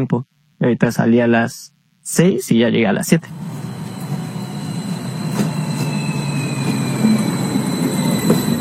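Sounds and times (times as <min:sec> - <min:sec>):
speech: 0:00.0 - 0:04.2
faint high metallic whines of a passenger train: 0:03.3 - 0:08.5
passenger train rolling along the rails in central Mexico: 0:03.3 - 0:08.5.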